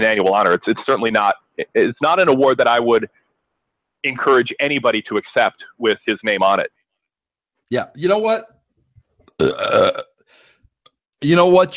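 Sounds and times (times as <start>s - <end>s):
speech: 0.0s - 3.2s, 4.0s - 6.8s, 7.7s - 8.5s, 9.4s - 10.4s, 11.2s - 11.7s
loud burp with rough voiced rumble: 9.4s - 10.1s.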